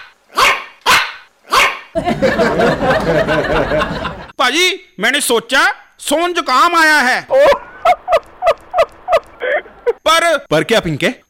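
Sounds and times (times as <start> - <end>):
small dog yapping outside a house: 0.0 - 1.9
laughter: 2.0 - 4.3, 7.3 - 10.0
speech: 2.0 - 7.6, 10.2 - 11.2.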